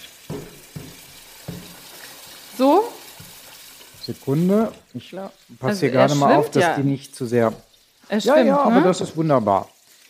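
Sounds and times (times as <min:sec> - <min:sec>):
köfte meatballs sizzling in a frying pan: 0:00.0 - 0:10.0
soft knocks on a frying pan: 0:00.2 - 0:02.1, 0:03.1 - 0:03.5
speech: 0:02.6 - 0:02.8, 0:04.1 - 0:09.7.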